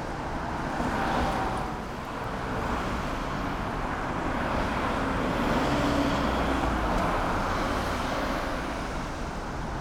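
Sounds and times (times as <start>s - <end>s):
traffic: 0.0s - 9.8s.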